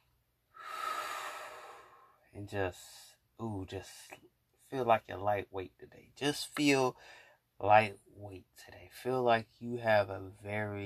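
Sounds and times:
deep breath during a calm focusing exercise: 0.5s - 2.2s, 7.0s - 7.5s
speech: 2.4s - 10.8s.

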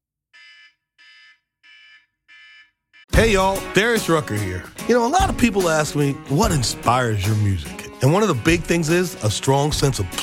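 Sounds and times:
buzzing electronic alarm marking the end of a timed segment: 0.4s - 3.1s
speech: 3.2s - 10.2s.

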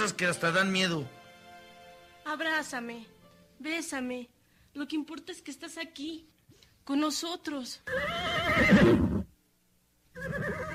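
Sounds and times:
speech: 0.0s - 1.2s, 2.3s - 9.0s
horse whinnying loudly: 7.9s - 9.3s, 10.1s - 10.7s.

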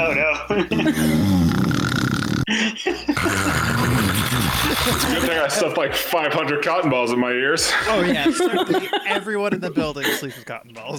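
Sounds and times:
laughter: 0.0s - 1.4s, 2.5s - 10.6s
speech: 0.0s - 1.6s, 4.8s - 10.9s
voice imitating loud snoring: 0.8s - 2.5s, 3.2s - 5.4s.

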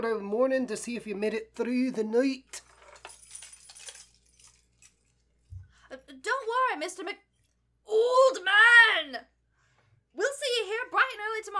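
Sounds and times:
speech: 0.0s - 2.7s, 6.2s - 7.3s, 7.9s - 9.3s, 10.2s - 11.5s
bunch of keys jingling as they are handed over at a mansion: 2.6s - 5.6s.

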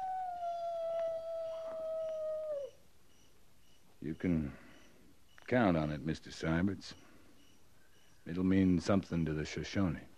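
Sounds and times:
coyote howling: 0.0s - 2.8s
speech: 4.0s - 4.6s, 5.5s - 7.0s, 8.2s - 10.1s.

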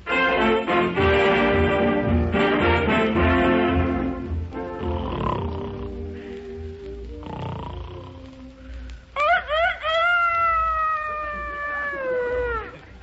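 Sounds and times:
music: 0.0s - 9.2s
Rhode Island Red rooster crowing: 9.1s - 13.0s.

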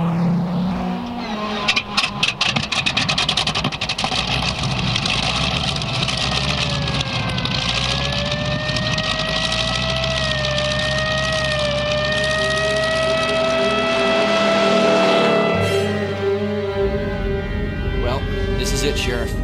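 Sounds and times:
small airplane engine starting and droning: 0.0s - 19.4s
small airplane engine cranking: 1.1s - 14.7s.

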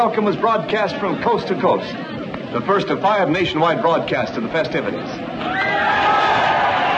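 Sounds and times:
speech: 0.0s - 6.2s
large crowd roaring and cheering at the Dodge City station in Kansas: 5.2s - 6.9s.

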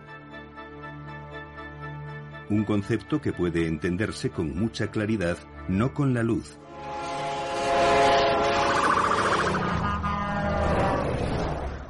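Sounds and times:
speech: 2.5s - 7.1s
passing train horn blaring: 6.6s - 11.2s
rumbling rail roar of passing train: 6.6s - 11.8s.

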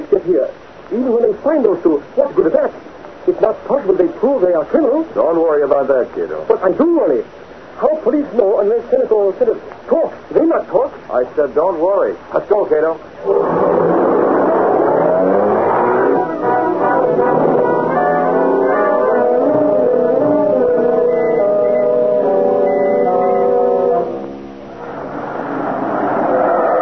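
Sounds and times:
speech: 0.3s - 13.8s
car engine droning and revving as the car approaches: 13.2s - 26.7s.

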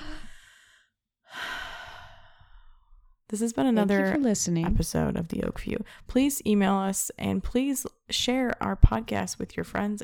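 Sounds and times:
person taking a deep breath: 0.0s - 2.9s
speech: 3.3s - 10.0s.

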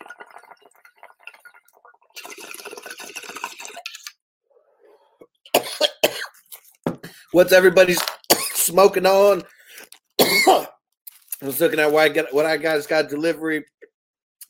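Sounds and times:
sick person coughing: 5.6s - 6.4s, 8.3s - 8.6s, 10.2s - 10.8s
speech: 7.3s - 8.1s, 8.7s - 9.5s, 11.4s - 13.7s
raspy breathy sounds: 9.4s - 10.0s.

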